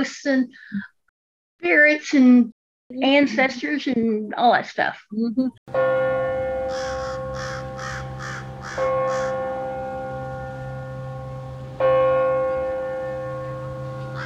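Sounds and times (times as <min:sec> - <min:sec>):
speech: 0:00.0 - 0:00.9, 0:01.6 - 0:06.0
resonant bell tolling slowly: 0:05.7 - 0:14.2
large crow cawing from its feeding spot: 0:06.6 - 0:09.6, 0:14.0 - 0:14.2.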